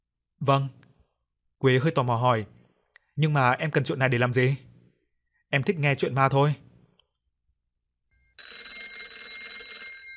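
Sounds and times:
speech: 0.4 - 0.8, 1.6 - 2.6, 3.2 - 4.7, 5.5 - 6.6
mobile phone ringing: 8.2 - 10.1.

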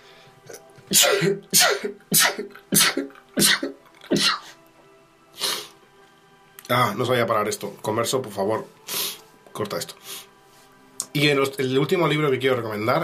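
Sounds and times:
speech: 0.9 - 4.4, 6.7 - 8.9, 9.6 - 10.3, 11.2 - 13.0
person sneezing: 0.9 - 4.6.

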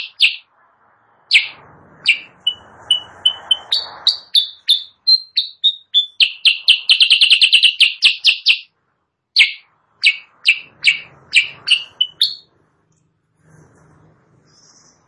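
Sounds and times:
sooty-headed bulbul singing: 0.0 - 0.5, 1.3 - 8.7, 9.4 - 12.5
soft background noise: 0.0 - 15.0.

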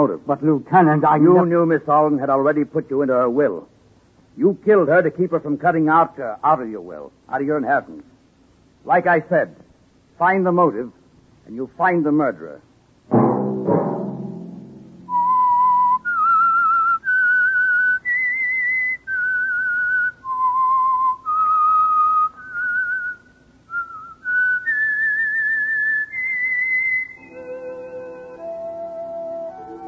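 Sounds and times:
speech: 0.0 - 3.7, 4.4 - 8.1, 8.8 - 9.6, 10.2 - 13.2
clear high whistled signal tune: 15.1 - 29.8.

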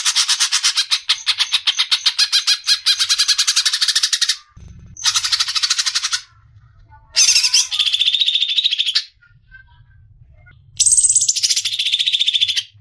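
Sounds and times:
greater green leafbird song with harsh bursts and long cackling phrase: 0.0 - 6.3, 7.2 - 9.2, 10.8 - 12.8.

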